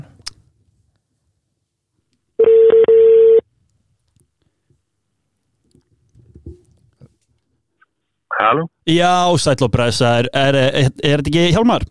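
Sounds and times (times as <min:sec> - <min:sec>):
phone ringback tone on speakerphone: 0:02.4 - 0:03.4
faint rustles and knocks: 0:03.8 - 0:08.1
speech: 0:08.5 - 0:11.8.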